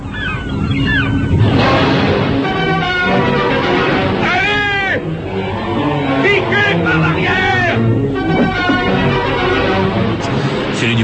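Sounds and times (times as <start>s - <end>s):
birds chirping: 0.0s - 1.6s, 4.4s - 11.0s
honking cries: 0.0s - 10.2s
steady broadband noise: 0.0s - 11.0s.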